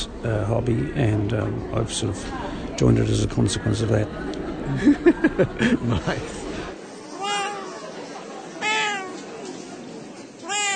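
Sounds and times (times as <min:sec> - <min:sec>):
murmur of noise: 0:00.0 - 0:10.7
speech: 0:00.2 - 0:06.4
laughter: 0:04.2 - 0:06.8
cat meowing at a cat show in New Zealand: 0:07.1 - 0:07.8, 0:08.6 - 0:09.2, 0:10.4 - 0:10.7.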